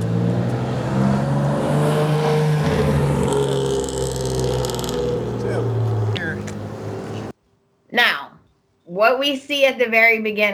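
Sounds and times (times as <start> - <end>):
car engine droning and zooming by: 0.0 - 7.3
speech: 9.1 - 10.5.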